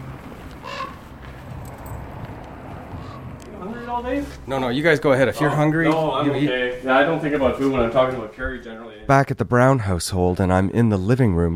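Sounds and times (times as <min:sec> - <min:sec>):
raven cawing: 0:00.0 - 0:04.0
steady low outdoor rumble: 0:00.0 - 0:06.4
speech: 0:03.9 - 0:11.5.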